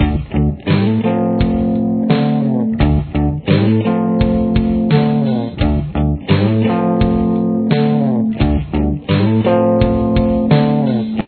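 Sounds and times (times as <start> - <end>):
guitar riff: 0.0 - 11.2.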